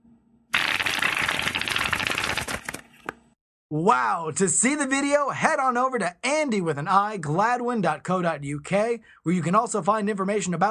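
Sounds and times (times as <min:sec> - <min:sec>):
playing cards shuffled one-handed off the back of a cat's head: 0:00.6 - 0:03.2
playing cards snapping as they settle: 0:01.8 - 0:03.2
speech: 0:03.7 - 0:10.6.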